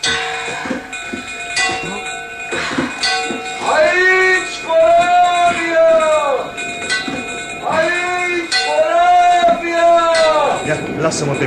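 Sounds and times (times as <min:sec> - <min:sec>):
bell being rung: 0:00.0 - 0:11.4
faint voices or commotion: 0:03.6 - 0:11.4
speech: 0:11.0 - 0:11.4.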